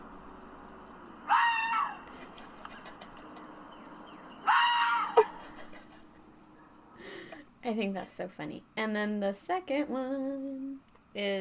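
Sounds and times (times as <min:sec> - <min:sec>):
fox screaming: 0:01.3 - 0:02.1, 0:04.4 - 0:05.4
speech: 0:07.7 - 0:11.4.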